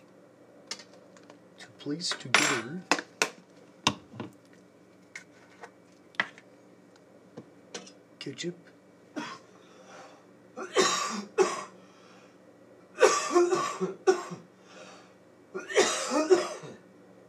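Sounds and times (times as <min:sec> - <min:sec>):
speech: 0:01.8 - 0:03.0, 0:08.3 - 0:08.7
man coughing in an audience: 0:09.2 - 0:09.5, 0:10.6 - 0:11.7, 0:13.0 - 0:14.5, 0:15.6 - 0:16.8.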